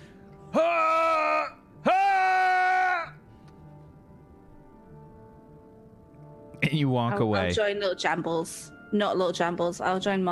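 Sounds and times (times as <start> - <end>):
person wailing screams: 0.5 - 3.2
speech: 6.6 - 10.3.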